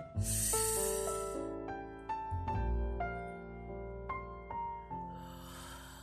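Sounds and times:
deep inhaling breath in a guided relaxation exercise: 0:00.0 - 0:01.5, 0:05.1 - 0:06.0
soft sustained music tones: 0:00.0 - 0:06.0.

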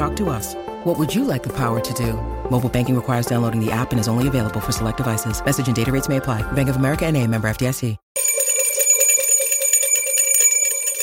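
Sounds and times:
speech: 0:00.2 - 0:08.3
bright metallic bell ringing: 0:08.2 - 0:11.0.

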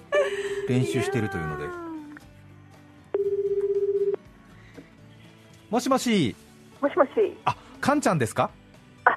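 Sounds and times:
speech: 0:00.7 - 0:01.8, 0:05.7 - 0:08.6
warbling telephone ringback tone: 0:03.2 - 0:04.2.

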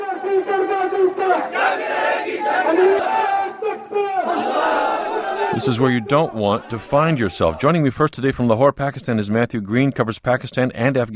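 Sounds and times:
large crowd shouting and chanting in protest near a prison: 0:00.0 - 0:08.0
speech: 0:05.6 - 0:11.1.

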